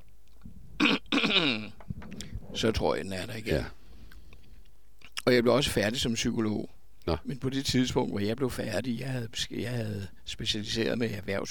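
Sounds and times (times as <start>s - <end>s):
person coughing: 0.8s - 1.7s
speech: 1.3s - 1.8s, 2.6s - 3.8s, 5.3s - 11.4s.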